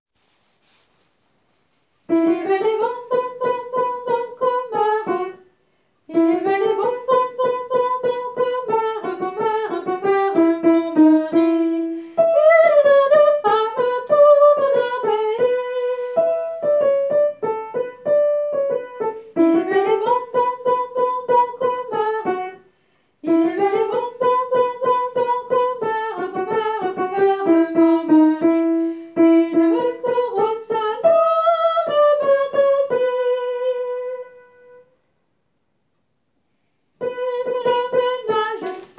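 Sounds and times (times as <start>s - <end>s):
soprano singing: 2.1s - 5.4s, 6.1s - 22.6s, 23.2s - 34.9s, 37.0s - 38.9s.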